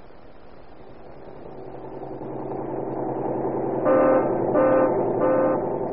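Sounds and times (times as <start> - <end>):
modern interurban bus engine rumbling: 0.0 - 5.9
pneumatic tires rolling along a concrete highway: 0.0 - 5.9
interurban bus horn honks: 3.9 - 5.8.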